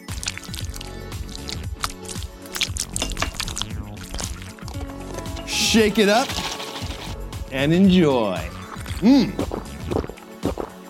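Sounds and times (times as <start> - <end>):
water poured from a measuring cup: 0.0 - 7.2
speech: 5.7 - 6.5, 7.5 - 9.5.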